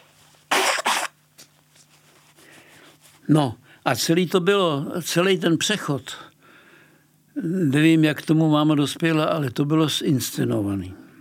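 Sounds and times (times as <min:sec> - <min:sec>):
faint short sniff: 0:00.5 - 0:01.1, 0:02.2 - 0:03.2
loud nose blow in honking bursts: 0:00.5 - 0:01.2
speech: 0:03.3 - 0:06.3, 0:07.4 - 0:11.0.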